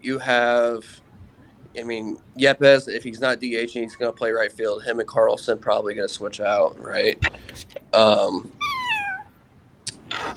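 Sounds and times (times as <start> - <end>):
speech: 0.0 - 1.0, 1.8 - 8.6
cat meowing: 8.6 - 9.3.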